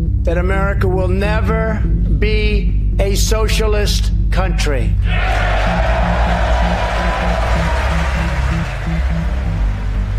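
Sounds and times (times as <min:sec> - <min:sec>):
speech: 0:00.3 - 0:08.2
crowd noise and low cheering voices: 0:05.1 - 0:10.1
loud sustained applause in a large hall: 0:05.1 - 0:10.1.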